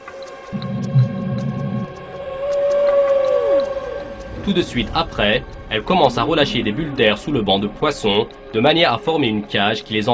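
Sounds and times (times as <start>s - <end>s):
whale vocalization from whales feeding together on krill or fish: 0.5s - 5.3s
speech: 4.5s - 10.1s.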